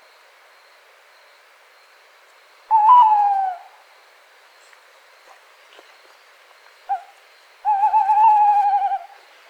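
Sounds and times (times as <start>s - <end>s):
tawny owl Strix aluco hooting: 2.7s - 3.8s, 6.9s - 9.2s.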